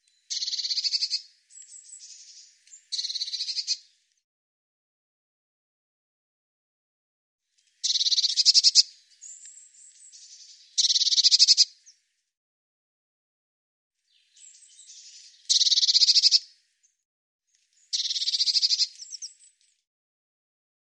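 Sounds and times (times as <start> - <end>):
bird twittering: 0.2 - 3.8, 7.8 - 11.7, 14.2 - 16.5, 17.8 - 19.5.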